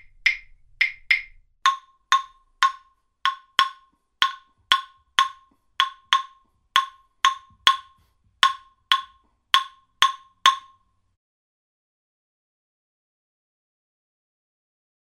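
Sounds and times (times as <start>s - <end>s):
wooden claves: 0.3s - 10.8s.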